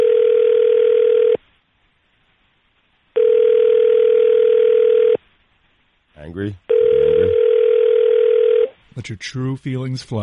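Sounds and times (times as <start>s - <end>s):
telephone ringing on an outgoing call: 0.0s - 1.4s, 3.2s - 5.2s, 6.7s - 8.7s
speech: 9.1s - 10.2s.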